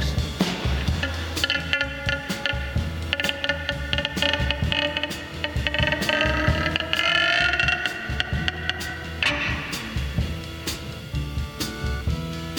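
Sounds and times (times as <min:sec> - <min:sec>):
rattling mechanical noise: 0:00.0 - 0:12.5
room door creaking open: 0:04.7 - 0:09.9.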